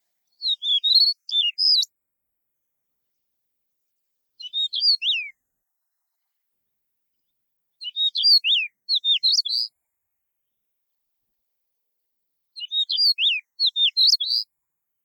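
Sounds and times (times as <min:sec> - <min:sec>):
Stejneger's stonechat singing scratchy chirping phrases: 0:00.0 - 0:02.0, 0:04.4 - 0:05.4, 0:07.1 - 0:09.7, 0:12.6 - 0:14.5.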